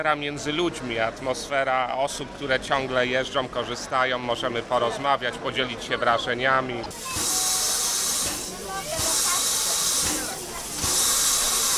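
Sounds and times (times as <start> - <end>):
speech: 0.0 - 7.4
faint voices murmuring: 0.0 - 11.7
train at a station hissing steam: 6.9 - 11.7.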